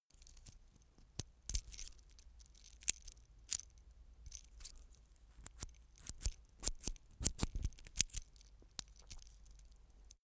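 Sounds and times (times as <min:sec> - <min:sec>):
metal watchstrap rattling: 0:01.5 - 0:03.7, 0:04.3 - 0:09.9.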